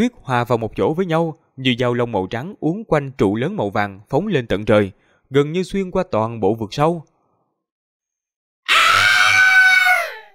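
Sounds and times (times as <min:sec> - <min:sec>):
speech: 0:00.0 - 0:07.1
monster screaming: 0:08.7 - 0:10.3.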